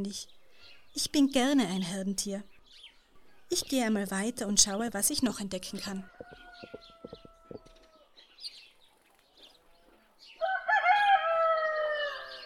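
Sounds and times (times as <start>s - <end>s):
speech: 0.0s - 0.4s, 1.0s - 2.5s, 3.5s - 7.2s
faint clucks: 5.9s - 7.9s
rooster crowing: 6.0s - 8.1s, 10.4s - 12.4s
faint taps: 6.1s - 7.9s.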